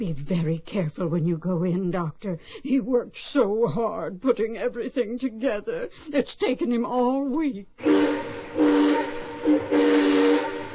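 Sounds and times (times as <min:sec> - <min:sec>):
speech: 0:00.0 - 0:07.9
model railroad train whistle blasts: 0:07.8 - 0:10.7
steady hissing: 0:07.8 - 0:10.7.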